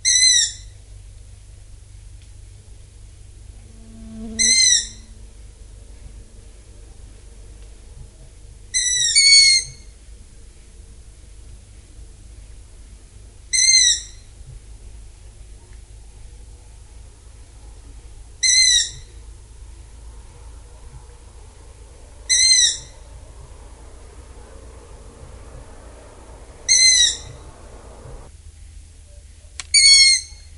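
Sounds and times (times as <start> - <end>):
low steady hum: 0.0 - 29.7
long-eared owl chicks giving high squeaky calls: 18.4 - 19.1, 21.8 - 28.3.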